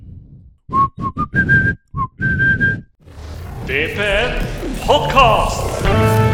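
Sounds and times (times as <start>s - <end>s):
person whistling a short tune: 0.7s - 2.9s
speech: 3.7s - 6.2s.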